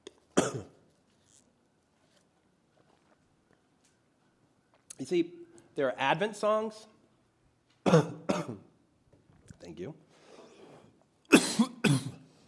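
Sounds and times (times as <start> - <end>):
person coughing: 0.4 - 0.8, 7.9 - 8.7, 11.3 - 12.3
speech: 0.5 - 0.8, 5.0 - 6.9, 9.8 - 10.1.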